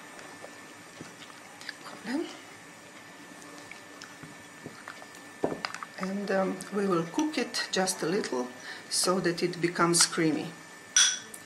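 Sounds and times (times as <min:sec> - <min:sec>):
chickpea flour being stirred into water: 0:00.0 - 0:08.3
speech: 0:06.0 - 0:10.6.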